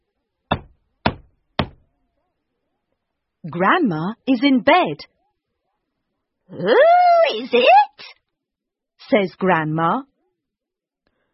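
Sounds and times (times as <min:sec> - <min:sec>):
firm knocks on a wooden door: 0:00.5 - 0:01.8
speech: 0:03.4 - 0:05.1, 0:06.5 - 0:08.1, 0:09.1 - 0:10.1.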